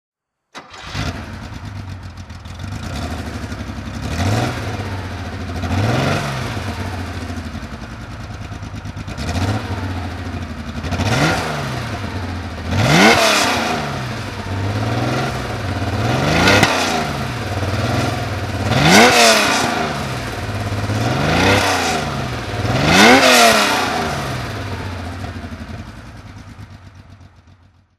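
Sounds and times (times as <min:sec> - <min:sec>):
Porsche 911 22T rally car throttle revving: 0:02.6 - 0:06.7, 0:10.8 - 0:25.9.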